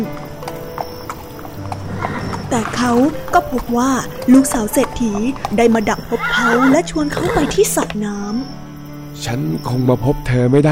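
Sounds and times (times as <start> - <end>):
horse hooves clip-clopping as rider passes: 0.0 - 8.5
speech: 2.5 - 8.6, 9.2 - 10.6.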